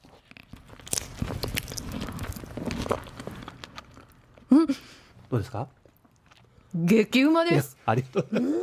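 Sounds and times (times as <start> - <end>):
chewing strawberry-flavored pink rice cake made of Kinme rice and glutinous rice: 0.0 - 4.5, 5.8 - 6.6
speech: 4.6 - 5.8, 6.7 - 8.6.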